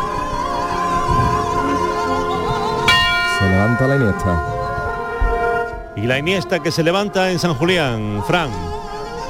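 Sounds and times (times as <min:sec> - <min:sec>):
loud outdoor crowd noise: 0:00.0 - 0:08.8
bell ringing: 0:02.9 - 0:06.4
speech: 0:03.4 - 0:04.6, 0:06.0 - 0:08.9.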